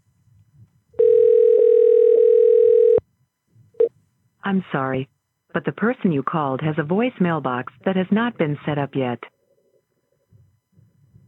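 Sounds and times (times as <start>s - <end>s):
telephone dial tone while placing a call: 1.0s - 3.0s
speech: 4.5s - 9.3s.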